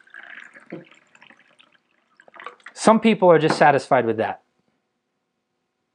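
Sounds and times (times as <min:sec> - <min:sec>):
water pouring from a pitcher into a cup: 0:00.0 - 0:02.9
speech: 0:00.7 - 0:01.1, 0:02.8 - 0:04.4.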